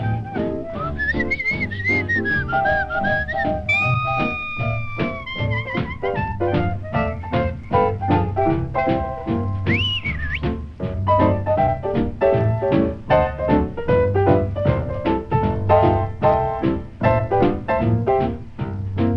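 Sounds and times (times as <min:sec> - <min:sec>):
person whistling a lively wavering tune: 0:00.0 - 0:07.5, 0:09.6 - 0:10.6
full musical backing with a steady rhythmic beat: 0:00.0 - 0:19.1.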